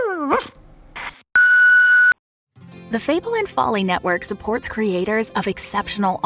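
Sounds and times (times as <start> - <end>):
dog giving a brief whining yelp: 0.0 - 0.6
speech: 2.9 - 6.2.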